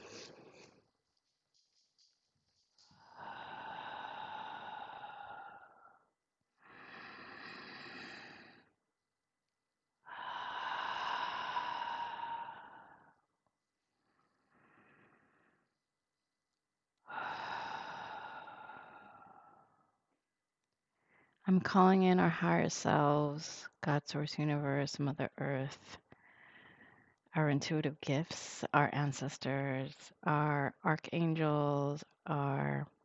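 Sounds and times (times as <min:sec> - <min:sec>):
slow deep breaths: 0:02.8 - 0:08.9, 0:10.0 - 0:15.9, 0:17.0 - 0:20.1, 0:21.0 - 0:21.4, 0:26.0 - 0:27.3
speech: 0:21.5 - 0:26.0, 0:27.4 - 0:33.0.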